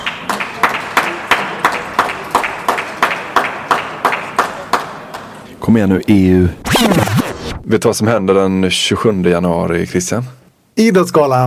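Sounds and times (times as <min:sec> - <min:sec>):
coach clapping hands at a competition: 0:00.0 - 0:05.4
speech: 0:05.7 - 0:11.4.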